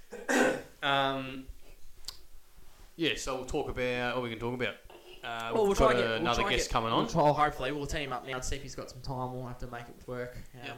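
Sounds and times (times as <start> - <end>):
person coughing into the microphone with a throaty rasp: 0.0 - 0.7
speech: 3.0 - 10.7.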